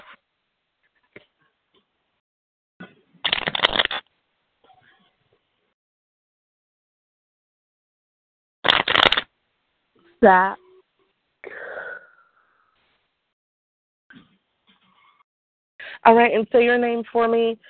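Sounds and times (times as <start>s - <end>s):
deck of cards being riffle-shuffled: 3.2s - 4.0s, 8.7s - 9.3s
speech: 10.2s - 10.6s, 16.0s - 17.6s.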